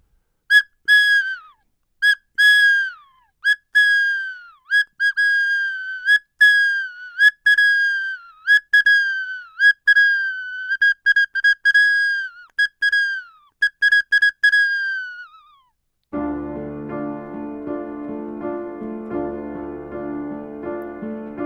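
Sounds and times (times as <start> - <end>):
toy whistle or pipe blown in short shrill toots: 0.5 - 15.7
soft instrumental music: 16.2 - 21.4.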